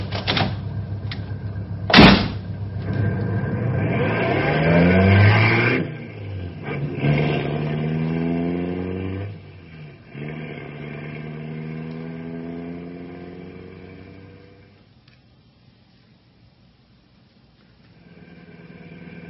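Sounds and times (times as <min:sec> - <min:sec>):
car engine starting, revving and accelerating as the car pulls away: 0:00.0 - 0:14.8, 0:17.9 - 0:19.2
car door thudding shut: 0:01.9 - 0:02.4.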